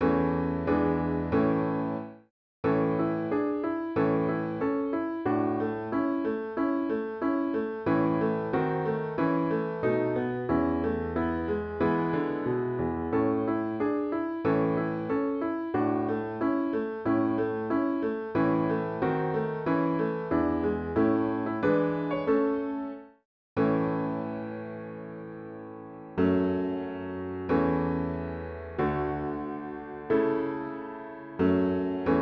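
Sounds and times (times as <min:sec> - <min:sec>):
piano: 0:00.0 - 0:32.2.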